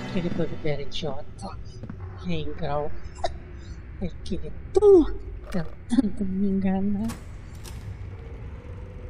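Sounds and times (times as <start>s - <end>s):
speech: 0.1s - 3.3s, 4.0s - 7.3s
heavy door creaking open: 7.0s - 9.0s.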